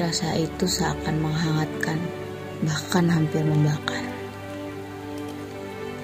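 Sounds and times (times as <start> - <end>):
speech: 0.0 - 4.2
steady rain falling: 0.1 - 6.0.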